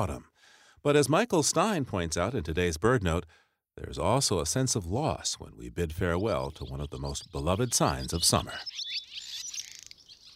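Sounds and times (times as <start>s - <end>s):
speech: 0.0s - 9.0s
swallow twittering: 5.9s - 10.3s.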